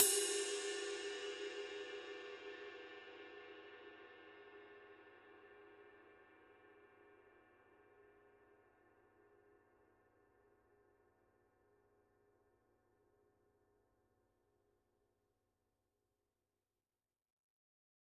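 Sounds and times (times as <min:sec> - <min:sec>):
Paiste Formula 602 22-inch medium ride cymbal struck on body: 0:00.0 - 0:04.1.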